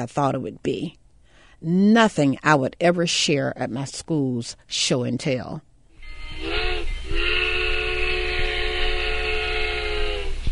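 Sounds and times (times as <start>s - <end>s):
speech: 0.0s - 1.0s, 1.6s - 5.7s
train whistle blasts: 5.9s - 10.5s.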